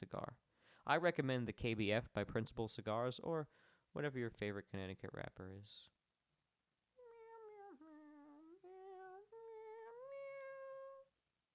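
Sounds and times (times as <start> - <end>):
speech: 0.0 - 5.9
cat meowing: 7.0 - 11.1.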